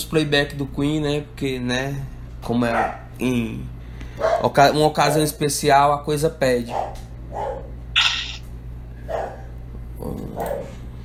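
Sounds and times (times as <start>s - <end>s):
speech: 0.0s - 7.6s
steady low electrical hum: 0.0s - 11.0s
dog barking: 2.7s - 3.1s, 4.2s - 4.6s, 6.6s - 7.8s, 9.0s - 9.6s, 10.4s - 10.8s.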